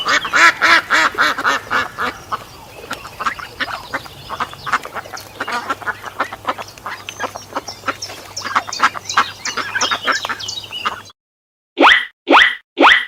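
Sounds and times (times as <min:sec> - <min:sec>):
duck quacking: 0:00.0 - 0:11.1.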